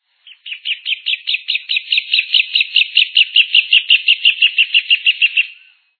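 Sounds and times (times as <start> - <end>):
casaca-de-couro-amarelo bird calling: 0.2 - 5.9.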